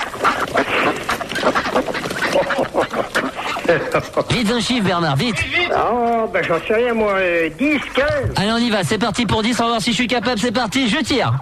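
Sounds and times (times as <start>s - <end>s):
large flock of ducks quacking near a pond: 0.0s - 11.4s
laughter: 2.2s - 5.5s
speech: 3.7s - 11.4s.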